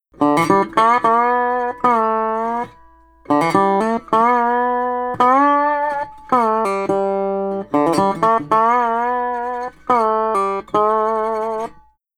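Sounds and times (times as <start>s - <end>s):
country dobro chorus: 0.2s - 11.8s.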